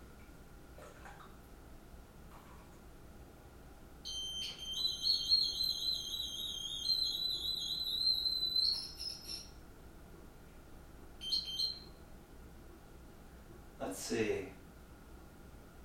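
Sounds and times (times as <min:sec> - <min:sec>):
faint noise: 0:00.0 - 0:15.8
high electronic tone from a device while a lever is pressed: 0:04.1 - 0:09.4
short beeps from a device: 0:04.1 - 0:09.5, 0:11.2 - 0:11.9
speech: 0:14.1 - 0:14.6.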